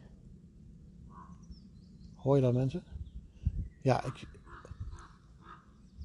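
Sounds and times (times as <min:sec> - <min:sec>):
speech: 0:02.2 - 0:02.9, 0:03.8 - 0:04.4
ravens croaking in a forest: 0:03.9 - 0:05.9.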